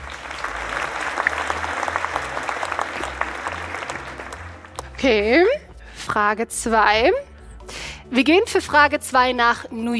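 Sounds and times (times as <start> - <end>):
audience applause: 0.0 - 5.0
speech: 5.0 - 7.3, 8.1 - 9.9.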